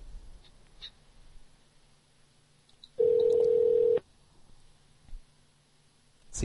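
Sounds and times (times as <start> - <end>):
phone line electronic tone: 3.0 - 4.0.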